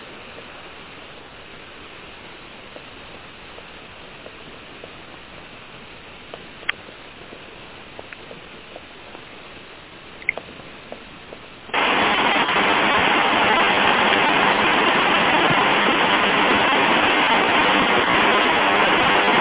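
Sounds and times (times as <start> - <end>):
heavy rain heard through a muffled narrowband phone line: 0.0 - 19.3
faint clicks: 6.3 - 9.3, 10.2 - 11.5.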